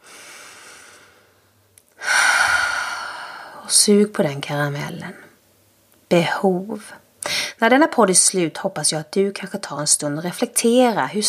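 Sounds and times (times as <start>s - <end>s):
loud breathy rush of air: 0.0s - 1.4s, 2.0s - 3.6s
person drawing a deep breath: 0.0s - 1.4s, 2.0s - 3.6s
speech: 3.7s - 5.3s, 6.1s - 7.0s, 7.6s - 11.2s.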